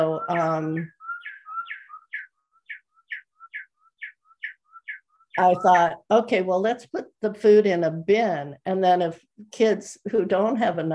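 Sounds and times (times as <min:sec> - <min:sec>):
speech: 0:00.0 - 0:01.0, 0:05.4 - 0:10.9
bird clock sounding the hour with birdsong chime: 0:00.0 - 0:06.0.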